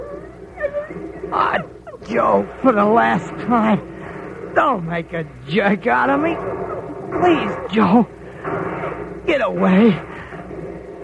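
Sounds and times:
dog yelping: 0:00.0 - 0:02.1, 0:06.4 - 0:07.7
dog whimpering: 0:00.0 - 0:02.4, 0:06.4 - 0:07.8
speech: 0:01.3 - 0:08.6, 0:09.3 - 0:10.1.

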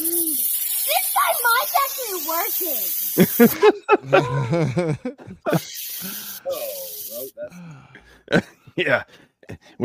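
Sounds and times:
silly string can spraying a steady hiss of aerosol: 0:00.0 - 0:03.6, 0:05.5 - 0:07.4
speech: 0:01.3 - 0:06.6, 0:08.3 - 0:09.2
people laughing: 0:03.2 - 0:05.7.

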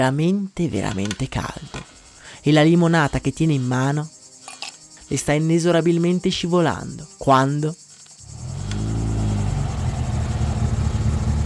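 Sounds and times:
speech: 0:00.0 - 0:04.2, 0:05.1 - 0:07.8
car engine rumbling as the car pulls in: 0:08.2 - 0:11.4.

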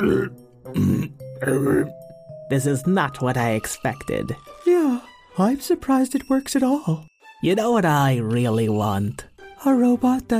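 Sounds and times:
person imitating loud deep burps: 0:00.0 - 0:02.1
speech: 0:00.0 - 0:10.3.

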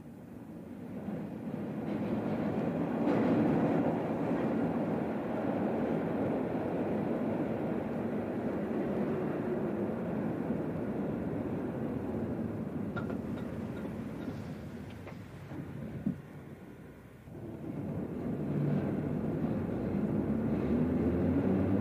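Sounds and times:
metro train arriving with rumbling roar: 0:00.0 - 0:21.8.

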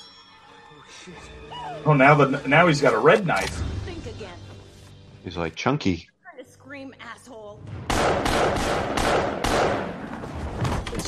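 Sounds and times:
speech: 0:00.9 - 0:03.7, 0:05.2 - 0:06.1
gunshots as a person is shot: 0:07.7 - 0:10.9.

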